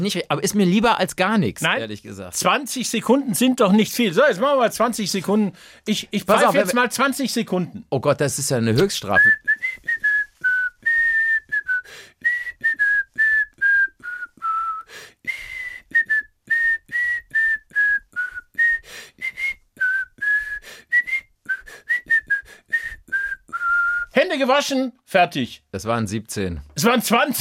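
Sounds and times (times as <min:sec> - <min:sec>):
speech: 0:00.0 - 0:09.9, 0:24.4 - 0:27.3
person whistling a bouncy tune: 0:09.1 - 0:24.1.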